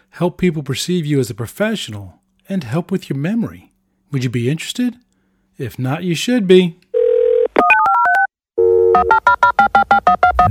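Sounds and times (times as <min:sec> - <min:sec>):
speech: 0:00.2 - 0:06.8, 0:09.0 - 0:10.4
phone dial tone: 0:07.0 - 0:10.4.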